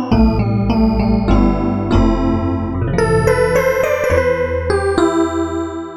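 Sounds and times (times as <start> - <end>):
factory performance synth patch: 0.2 - 5.8.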